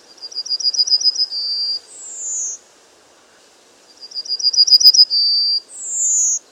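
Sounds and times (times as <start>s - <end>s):
bird song of high trill and drawn-out whistles: 0.1s - 2.6s, 3.9s - 6.4s.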